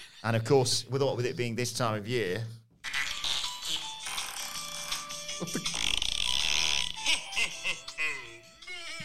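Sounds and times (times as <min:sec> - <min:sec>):
speech: 0:00.2 - 0:02.6, 0:05.4 - 0:05.8
novelty fart sound effect: 0:04.1 - 0:07.0
laughter: 0:07.1 - 0:08.4.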